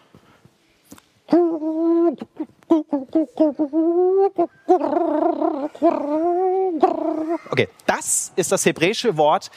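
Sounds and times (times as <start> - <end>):
human voice imitating a dove cooing: 1.3 - 7.7
speech: 3.4 - 9.5.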